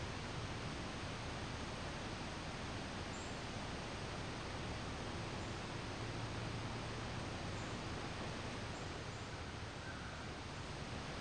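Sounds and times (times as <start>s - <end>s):
trees swaying in wind: 0.0s - 11.1s.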